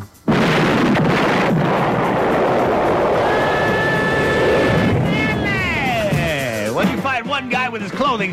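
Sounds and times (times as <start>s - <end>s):
propane tank explosion: 0.3s - 6.4s
roaring rumble: 0.3s - 6.8s
speech: 8.0s - 8.3s.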